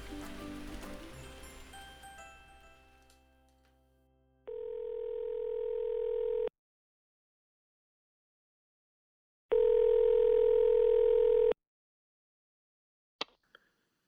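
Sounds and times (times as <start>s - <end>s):
telephone ringing in an electronic trill: 4.5s - 6.5s, 9.5s - 11.6s.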